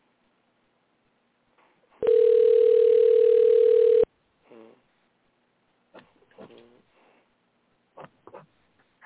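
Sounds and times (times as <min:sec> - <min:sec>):
steady telephone dial tone: 0:02.0 - 0:04.1.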